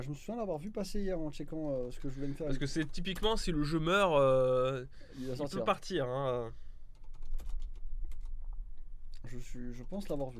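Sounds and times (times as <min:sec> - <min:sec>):
speech: 0:00.0 - 0:06.6, 0:09.2 - 0:10.3
typing on a computer keyboard: 0:06.9 - 0:08.6.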